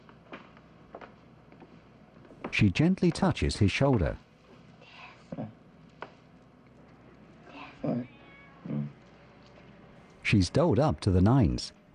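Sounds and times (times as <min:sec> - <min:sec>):
speech: 0:02.5 - 0:04.2, 0:10.3 - 0:11.9
cat meowing: 0:07.9 - 0:08.9.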